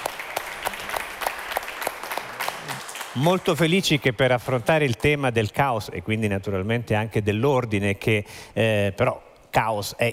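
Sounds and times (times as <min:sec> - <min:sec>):
audience applause at a philosophy festival in Modena: 0:00.0 - 0:03.8
speech: 0:03.2 - 0:10.1.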